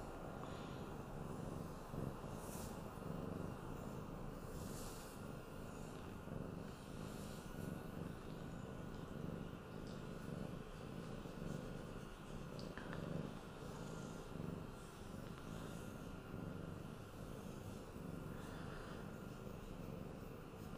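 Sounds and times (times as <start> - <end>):
cat purring after waking up: 0.0 - 20.7.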